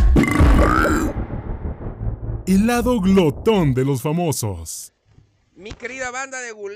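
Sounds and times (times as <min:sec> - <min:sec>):
long loud deep burp: 0:00.1 - 0:01.2
speech: 0:02.5 - 0:04.9, 0:05.6 - 0:06.7.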